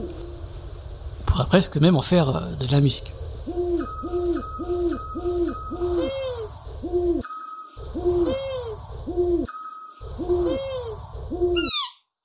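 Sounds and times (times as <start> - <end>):
speech: 1.4 - 3.6, 4.5 - 7.2
scops owl, long-eared owl and eagle owl hooting: 3.4 - 12.0.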